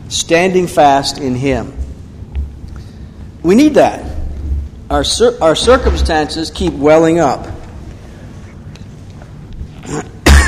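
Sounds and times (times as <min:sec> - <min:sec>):
speech: 0:00.1 - 0:01.8, 0:03.4 - 0:04.1, 0:04.9 - 0:07.5, 0:09.9 - 0:10.4
cough and throat clearing: 0:09.8 - 0:10.4.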